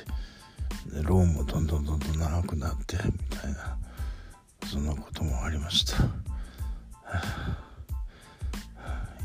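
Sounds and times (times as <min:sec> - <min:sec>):
heavy labored breathing after a workout: 0:00.0 - 0:00.9, 0:03.1 - 0:04.6, 0:05.9 - 0:09.2
speech: 0:00.8 - 0:03.9, 0:04.7 - 0:06.3, 0:07.1 - 0:07.6.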